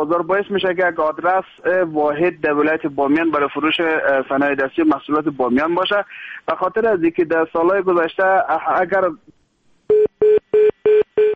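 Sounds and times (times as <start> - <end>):
speech: 0.0 - 9.4
telephone dialing tones while redialing a dropped call: 9.9 - 11.3.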